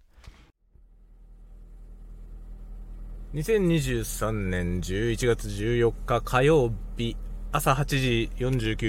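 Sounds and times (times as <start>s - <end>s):
car engine rumble heard inside a car: 0.0s - 8.8s
road noise inside a car: 1.9s - 8.8s
speech: 3.3s - 8.8s.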